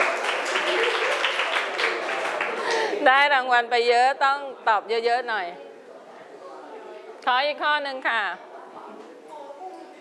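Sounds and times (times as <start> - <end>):
students clapping in a classroom: 0.0 - 3.0
speech: 3.0 - 5.6, 7.2 - 8.4.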